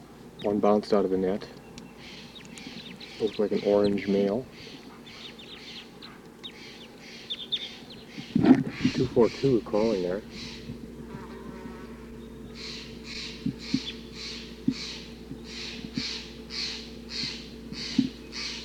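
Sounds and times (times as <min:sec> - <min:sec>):
constant low hum: 0:00.0 - 0:18.6
red crossbill flock calling near a net: 0:00.3 - 0:18.6
speech: 0:00.4 - 0:02.2, 0:03.2 - 0:04.8, 0:09.0 - 0:10.5
soft ticks: 0:01.5 - 0:03.0.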